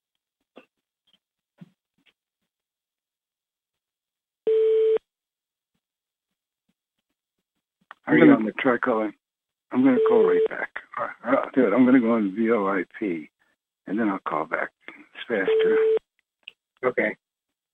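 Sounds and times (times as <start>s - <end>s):
steady electronic phone-line beep on hold: 4.5s - 5.0s, 15.5s - 16.0s
speech: 8.1s - 13.3s, 13.9s - 16.0s, 16.8s - 17.2s.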